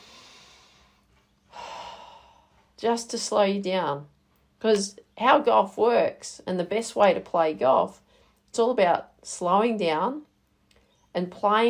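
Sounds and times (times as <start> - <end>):
slow deep breath taken to calm down before a golf shot: 0.0 - 2.8, 8.0 - 8.4
speech: 2.8 - 10.3, 11.1 - 11.6.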